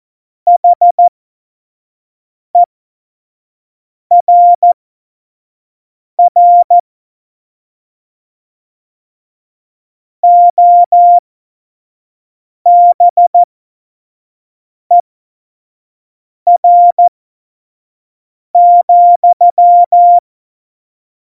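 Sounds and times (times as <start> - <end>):
CW Morse code beeps for a Morse course: 0.5 - 1.1, 4.1 - 4.8, 6.2 - 6.8, 10.2 - 11.2, 12.7 - 13.5, 16.5 - 17.1, 18.6 - 20.2.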